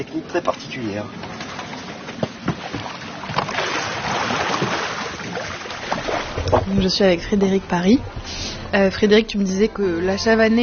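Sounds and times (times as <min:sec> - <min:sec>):
speech: 0:00.0 - 0:01.3, 0:06.7 - 0:10.6
water sloshing and lapping against a small boat gliding along: 0:00.0 - 0:09.9
pole being pushed through the water: 0:02.4 - 0:07.0.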